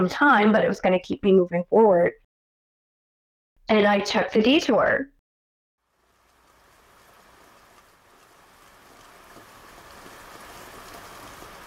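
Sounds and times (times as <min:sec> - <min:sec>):
speech: 0:00.0 - 0:02.2, 0:03.7 - 0:05.1
heavy rain pouring during a drive on a narrow mountain road: 0:05.9 - 0:11.6.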